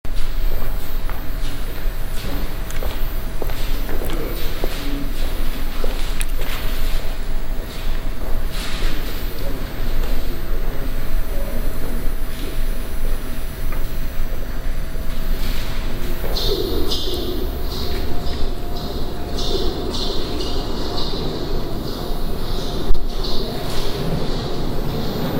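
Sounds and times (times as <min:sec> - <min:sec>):
Jubilee line underground train: 0:00.1 - 0:25.3.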